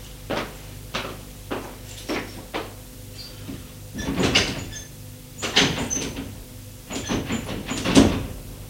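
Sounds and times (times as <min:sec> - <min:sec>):
locked door rattling as its handle is shaken: 0:04.0 - 0:08.4.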